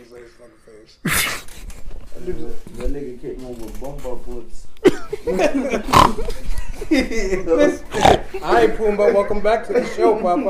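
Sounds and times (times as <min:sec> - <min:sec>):
speech: 0:00.1 - 0:10.4
laughter: 0:04.8 - 0:10.4
man imitating pig oinks and grunts: 0:05.8 - 0:06.4, 0:07.9 - 0:08.6.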